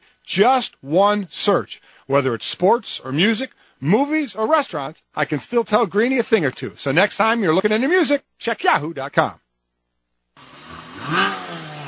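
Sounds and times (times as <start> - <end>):
speech: 0.3 - 9.4
Porsche sports car engine revving: 10.4 - 11.8.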